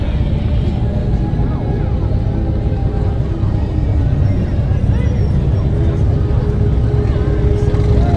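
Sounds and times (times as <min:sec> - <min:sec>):
voices of a crowd lining the street: 0:00.0 - 0:08.1
motorcycle club parading down a main street: 0:07.2 - 0:08.1.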